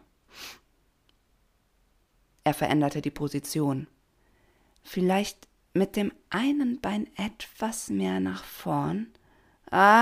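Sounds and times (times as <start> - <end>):
short nasal sniff: 0.3 - 0.7
speech: 2.5 - 4.0, 4.8 - 10.0.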